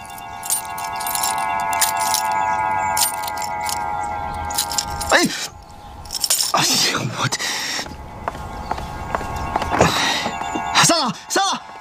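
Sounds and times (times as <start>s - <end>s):
car keys jangling: 0.0s - 6.8s
faint steady hum: 0.0s - 11.7s.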